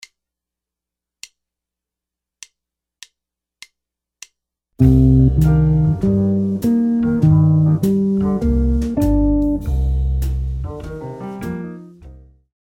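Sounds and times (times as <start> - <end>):
jazz guitar lick: 4.8 - 12.1.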